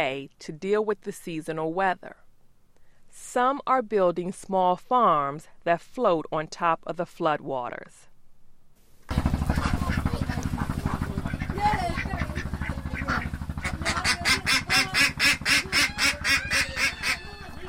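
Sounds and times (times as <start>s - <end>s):
speech: 0.0s - 2.2s, 3.1s - 8.1s
ducks quacking in a coop: 9.1s - 17.6s
low motor hum: 9.1s - 17.6s.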